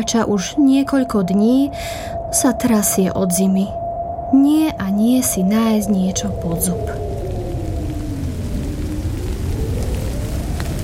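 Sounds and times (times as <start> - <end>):
speech: 0.0 - 7.1
thunder rumbling: 0.0 - 10.8
steady rain: 5.6 - 10.8.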